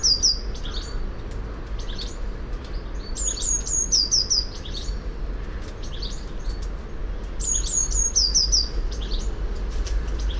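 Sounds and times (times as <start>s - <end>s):
Eurasian blue tit Cyanistes caeruleus singing: 0.0s - 10.3s.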